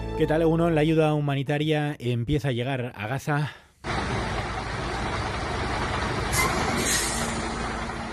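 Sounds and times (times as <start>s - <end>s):
speech: 0.2s - 3.6s
heavy trucks carrying humanitarian aid rumbling at the border crossing into Gaza: 3.8s - 8.1s
truck air brakes hissing: 6.3s - 7.8s.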